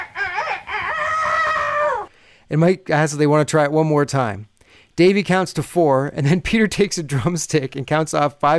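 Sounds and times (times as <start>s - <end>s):
person crowing like a rooster at a band audition: 0.0s - 2.1s
speech: 2.5s - 8.5s.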